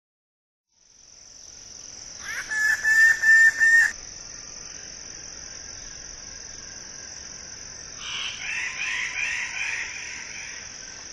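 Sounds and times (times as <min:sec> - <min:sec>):
shrill insect drone: 0:00.8 - 0:11.1
Wallace's standardwing nasal calls: 0:02.2 - 0:03.9.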